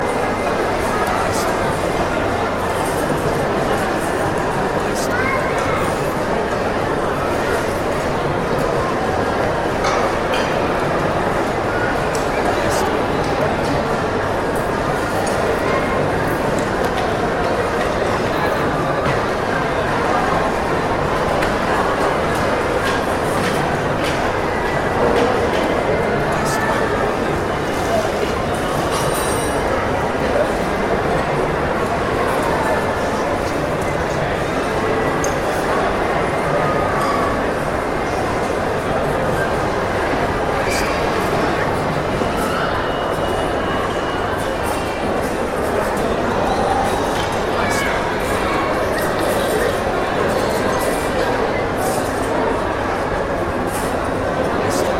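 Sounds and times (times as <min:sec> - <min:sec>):
food court ambience: 0:00.0 - 0:54.9.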